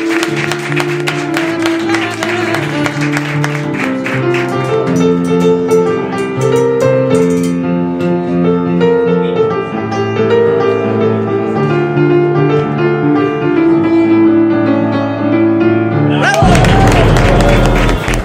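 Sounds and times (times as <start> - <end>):
studio audience applauding: 0.0 - 4.9, 16.1 - 18.2
loud steady music: 0.0 - 18.2.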